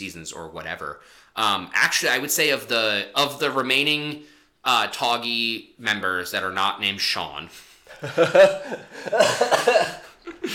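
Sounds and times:
speech: 0.0 - 10.5
person laughing in breathy bursts: 7.9 - 10.5
person coughing roughly: 8.4 - 10.5.

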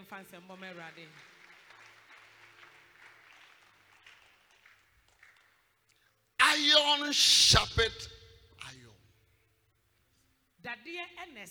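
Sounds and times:
crowd applauding: 0.0 - 5.8, 6.4 - 7.9
speech: 0.1 - 1.4, 6.6 - 8.9, 10.6 - 11.4
raised voice: 6.4 - 8.9.

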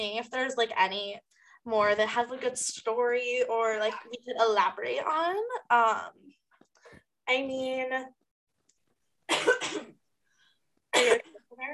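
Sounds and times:
speech: 0.0 - 6.4, 7.3 - 8.2, 11.0 - 11.7
person coughing up phlegm: 9.3 - 10.0, 10.9 - 11.5.

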